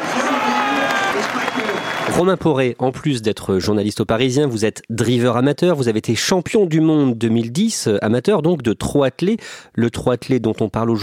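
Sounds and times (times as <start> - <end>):
dense applause from racecourse grandstand crowd: 0.0 - 2.7
large racecourse grandstand crowd roaring and cheering: 0.0 - 2.8
speech: 2.2 - 11.0.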